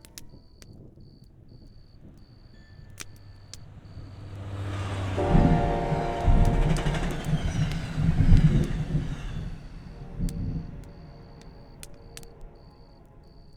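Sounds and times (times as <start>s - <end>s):
train wheels rolling heavily on a railroad track: 2.3s - 13.5s.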